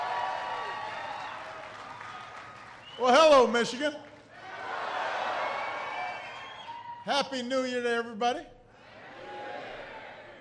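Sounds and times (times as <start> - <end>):
audience applauding after an introduction: 0.0 - 7.0
speech: 3.0 - 4.1, 7.1 - 8.6.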